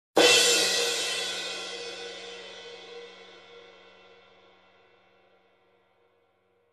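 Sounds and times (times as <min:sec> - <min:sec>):
hard crash cymbal hit: 0:00.2 - 0:05.1.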